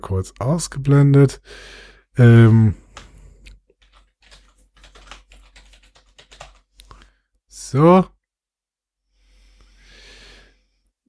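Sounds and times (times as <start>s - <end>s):
speech: 0.0s - 2.8s, 7.7s - 8.2s
typing an email address and password on a computer keyboard: 2.9s - 6.9s.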